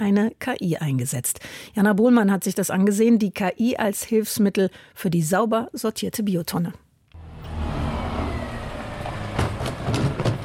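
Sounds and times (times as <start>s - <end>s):
speech: 0.0s - 6.8s
large garbage truck engine rumbling in a small side street: 7.2s - 10.4s.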